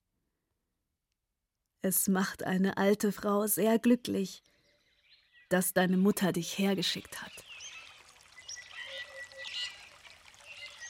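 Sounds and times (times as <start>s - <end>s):
speech: 1.8s - 4.5s, 5.5s - 7.5s
small brook babbling over tangled water plants and small rocks: 7.2s - 10.8s.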